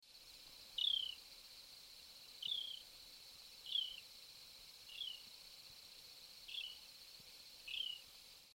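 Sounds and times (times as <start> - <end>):
steady high hiss: 0.0 - 8.5
tit calls: 0.7 - 1.3, 2.4 - 2.9, 3.6 - 4.1, 6.5 - 6.9, 7.6 - 8.1.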